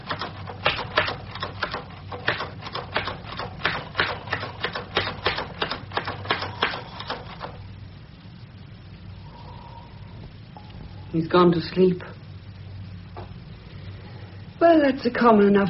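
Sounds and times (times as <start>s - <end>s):
rapid typewriter keystrokes: 0.0s - 7.6s
faint low hum: 0.0s - 15.6s
speech: 11.2s - 12.1s, 14.7s - 15.6s.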